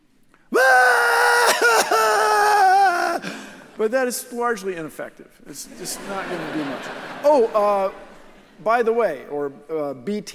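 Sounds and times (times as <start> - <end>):
person screaming: 0.5 - 3.6
speech: 3.8 - 10.3
laughter: 5.5 - 8.7.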